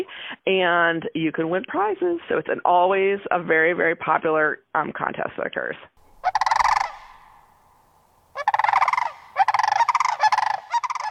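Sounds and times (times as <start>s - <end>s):
speech: 0.0s - 6.4s
Sandhill crane rolling rattled bugling spring call: 6.0s - 11.0s.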